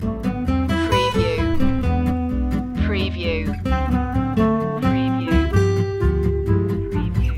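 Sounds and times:
ragtime music loop: 0.3 - 7.3.

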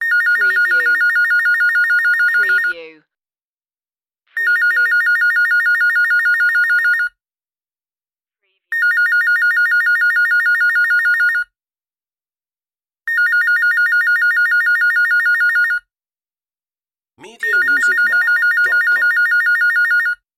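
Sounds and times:
office telephone ringing: 0.0 - 2.8, 4.4 - 7.1, 8.7 - 11.5, 13.1 - 15.9, 17.2 - 20.2.

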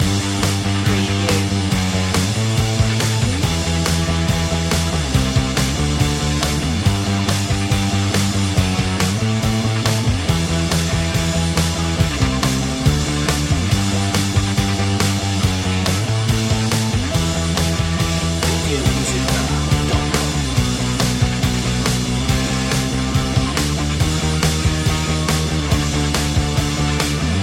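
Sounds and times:
intense rock loop: 0.0 - 27.4.

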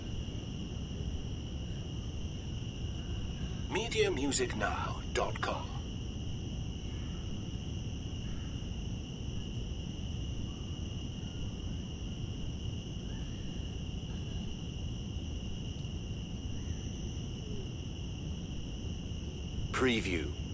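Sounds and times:
cicadas buzzing in a park: 0.0 - 20.5
speech: 3.7 - 5.8, 19.8 - 20.4.

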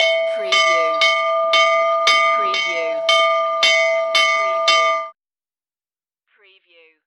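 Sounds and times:
fire bell ringing inside a school: 0.0 - 5.2.

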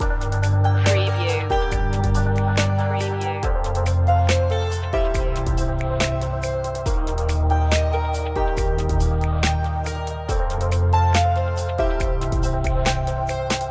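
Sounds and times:
downtempo chic electronica chillout loop: 0.0 - 13.6.

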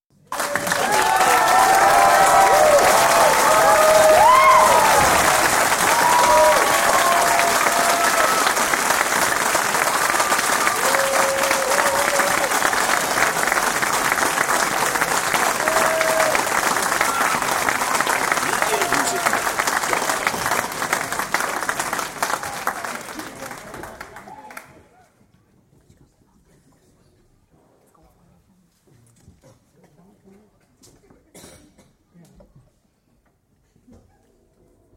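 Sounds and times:
big crowd audience applause: 0.2 - 24.8.

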